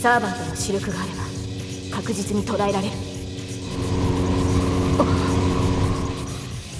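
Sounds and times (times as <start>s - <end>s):
speech: 0.0s - 1.2s, 1.9s - 4.0s, 5.0s - 5.4s
flying chariot engine-like rumble and whine: 3.4s - 6.7s.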